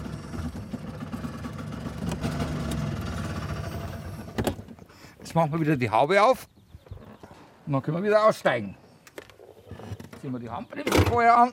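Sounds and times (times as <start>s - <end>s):
small car engine idling in a courtyard: 0.0s - 4.9s
speech: 5.3s - 6.6s, 7.7s - 8.8s, 10.2s - 11.5s.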